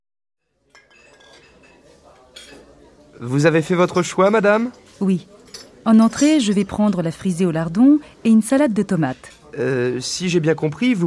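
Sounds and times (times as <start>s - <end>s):
dishes and cutlery clinking in a busy restaurant: 0.4s - 7.4s, 9.0s - 9.6s
murmur of indistinct chatter: 0.5s - 11.0s
speech: 3.2s - 11.0s.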